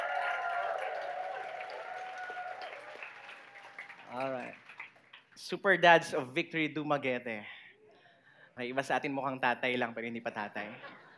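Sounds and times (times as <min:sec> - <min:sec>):
crowd applauding: 0:00.0 - 0:05.4
speech: 0:04.1 - 0:04.7, 0:05.4 - 0:07.6, 0:08.6 - 0:10.9.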